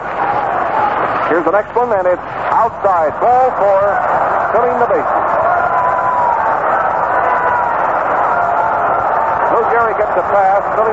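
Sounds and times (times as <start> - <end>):
large stadium crowd applauding and cheering: 0.0 - 10.9
speech: 1.3 - 5.6, 9.8 - 10.9.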